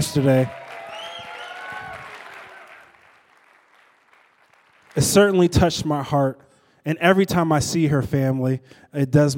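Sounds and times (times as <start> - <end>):
room full of people applauding: 0.0 - 5.5
speech: 0.1 - 0.6, 5.0 - 9.3.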